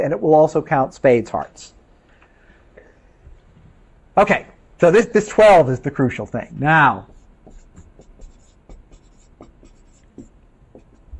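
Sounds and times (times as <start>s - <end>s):
speech: 0.0s - 1.8s, 4.2s - 7.1s
pen scratching on paper while handwriting: 7.0s - 11.1s.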